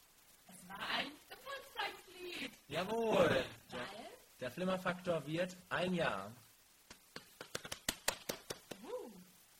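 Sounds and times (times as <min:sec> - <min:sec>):
speech: 0:02.7 - 0:03.5, 0:04.4 - 0:06.4
two people clapping in a studio: 0:06.9 - 0:09.0.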